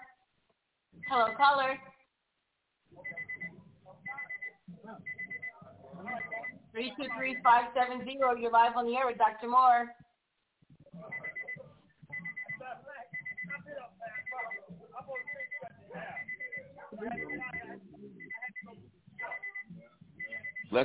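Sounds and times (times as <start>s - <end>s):
alarm beeping in a high electronic tone over a phone line: 1.0s - 1.6s, 3.0s - 7.8s, 11.1s - 20.8s
speech: 1.0s - 2.0s, 6.0s - 10.0s.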